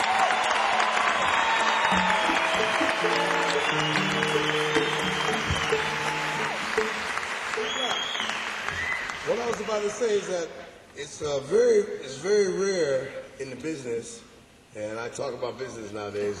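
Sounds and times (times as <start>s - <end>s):
large audience applause for band members: 0.0s - 10.3s
speech: 9.7s - 16.3s.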